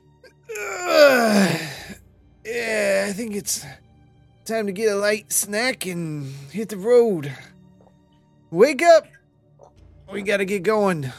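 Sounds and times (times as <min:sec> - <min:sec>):
person yawning: 0:00.5 - 0:02.0
speech: 0:03.2 - 0:03.9, 0:04.5 - 0:07.6, 0:08.5 - 0:09.2, 0:10.1 - 0:11.1.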